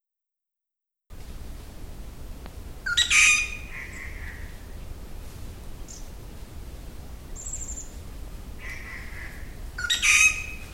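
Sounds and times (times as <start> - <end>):
grey treepie Dendrocitta formosae harsh squawks: 2.9 - 4.4, 8.6 - 10.6.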